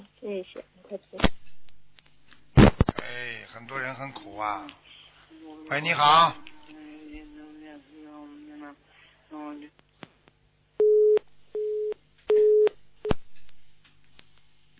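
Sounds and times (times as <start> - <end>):
speech: 0.2 - 1.4, 3.4 - 4.9, 5.5 - 6.5, 8.7 - 9.8
telephone busy signal beeps: 10.8 - 12.7.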